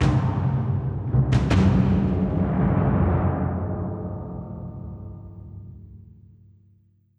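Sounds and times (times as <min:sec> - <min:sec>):
death drums: 0:00.0 - 0:05.7.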